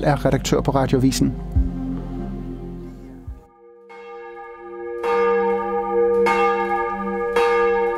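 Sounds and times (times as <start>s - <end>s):
speech: 0.0s - 1.6s
large cathedral church bells ringing for morning prayer: 3.8s - 7.9s.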